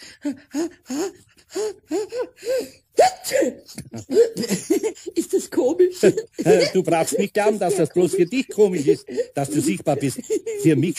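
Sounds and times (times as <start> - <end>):
speech: 0.2 - 4.8, 5.6 - 10.9
voice acting out a sneeze caused by dust in the nose: 3.0 - 3.7
laughter: 3.6 - 10.9.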